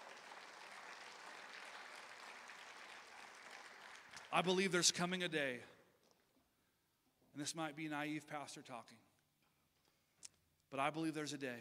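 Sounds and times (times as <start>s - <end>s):
crowd applauding: 0.0s - 4.6s
speech: 4.3s - 5.8s, 7.4s - 9.1s, 10.7s - 11.5s.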